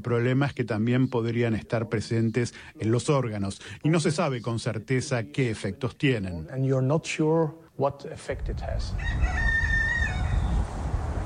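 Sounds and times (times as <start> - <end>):
speech: 0.0 - 9.5
rooster crowing in a garden: 8.9 - 10.8.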